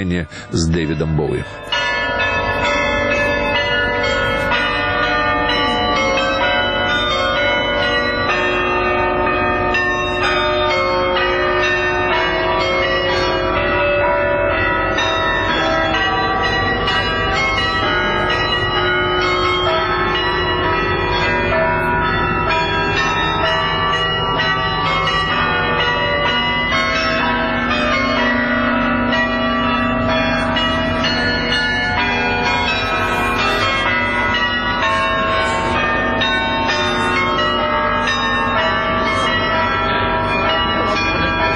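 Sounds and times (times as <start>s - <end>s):
speech: 0.0s - 1.7s
church bells playing a tribute melody: 0.0s - 41.5s.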